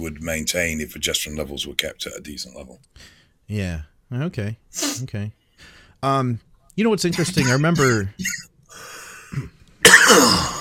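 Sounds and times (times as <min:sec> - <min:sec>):
speech: 0:00.0 - 0:10.5
person coughing: 0:07.2 - 0:08.5, 0:09.3 - 0:10.5.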